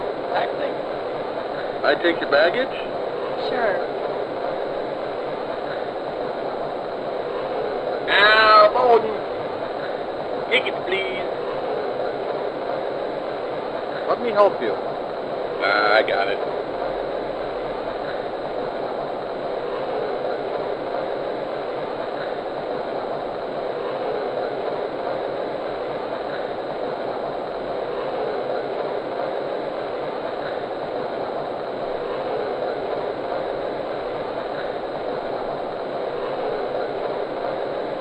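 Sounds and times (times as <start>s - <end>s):
faint rhythmic rail clatter: 0.0s - 37.9s
train departing a station rumbling: 0.0s - 37.9s
speech: 1.8s - 4.0s, 8.1s - 9.2s, 10.5s - 11.2s, 14.1s - 15.0s, 15.6s - 16.6s.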